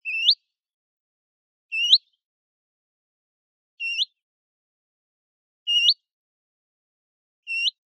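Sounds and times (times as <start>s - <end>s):
willow warbler singing: 0.0s - 0.5s, 1.7s - 2.2s, 3.8s - 4.2s, 5.7s - 6.1s, 7.5s - 7.8s.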